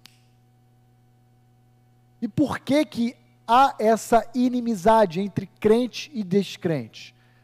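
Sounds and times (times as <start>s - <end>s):
finger snap: 0.0s - 0.3s
low electrical hum: 0.0s - 7.4s
speech: 2.2s - 7.2s.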